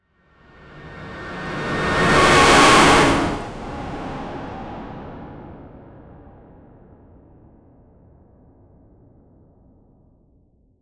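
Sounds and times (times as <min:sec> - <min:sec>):
cinematic whoosh: 0:00.8 - 0:04.4.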